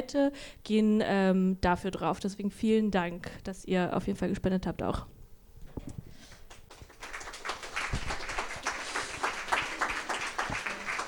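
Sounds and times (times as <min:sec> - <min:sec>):
speech: 0:00.1 - 0:05.2
audience applause in a room: 0:06.5 - 0:11.0.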